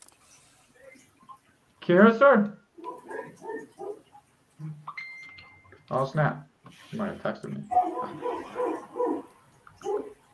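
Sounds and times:
speech: 0:01.9 - 0:02.6, 0:05.9 - 0:09.2
dog barking: 0:02.8 - 0:04.1, 0:07.7 - 0:10.2.

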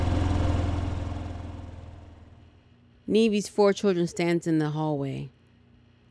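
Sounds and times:
food delivery motorcycle engine starting and driving away: 0:00.0 - 0:02.6
speech: 0:03.1 - 0:05.4.

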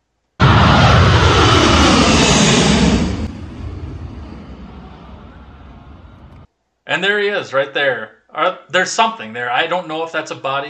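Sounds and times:
airplane engine roaring at full power during takeoff: 0:00.4 - 0:06.5
speech: 0:06.9 - 0:10.6.

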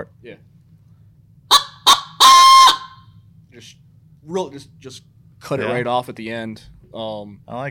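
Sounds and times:
coyote howler call blown as challenge bark and howl: 0:01.5 - 0:03.0
speech: 0:03.6 - 0:07.6.

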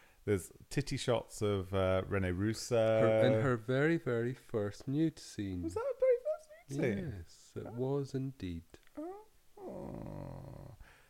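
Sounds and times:
speech: 0:00.2 - 0:06.0, 0:06.7 - 0:08.8
throaty purring: 0:09.0 - 0:10.8.

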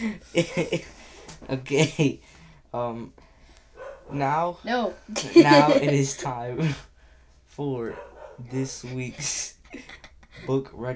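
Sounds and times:
laughter: 0:00.0 - 0:02.2, 0:05.1 - 0:06.8, 0:08.5 - 0:10.9
speech: 0:00.0 - 0:03.2, 0:04.1 - 0:06.9, 0:07.6 - 0:10.9
therapy dog barking: 0:03.8 - 0:04.3, 0:07.8 - 0:08.7.

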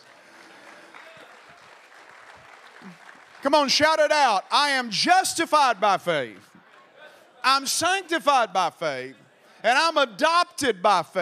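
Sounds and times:
audience clapping: 0:00.0 - 0:04.8
speech: 0:02.8 - 0:06.5, 0:07.4 - 0:11.2.

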